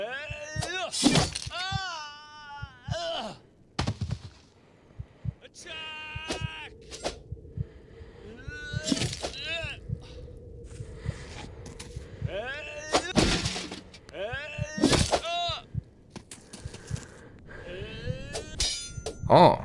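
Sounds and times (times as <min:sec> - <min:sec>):
fight commotion: 0:00.0 - 0:19.6
swords clashing in a fight: 0:01.0 - 0:01.6, 0:18.6 - 0:19.2.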